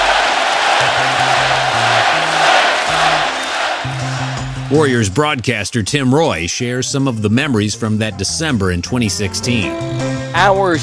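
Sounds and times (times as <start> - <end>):
large arena crowd chanting a player's name: 0.0 - 4.7
speech: 4.7 - 10.8.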